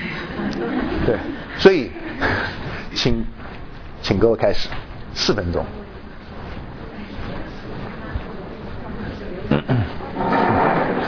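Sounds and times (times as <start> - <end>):
murmur of voices: 0.0 - 11.0
speech: 1.0 - 3.4, 4.1 - 5.8
chairs scraping and bumping across the floor: 10.0 - 11.0.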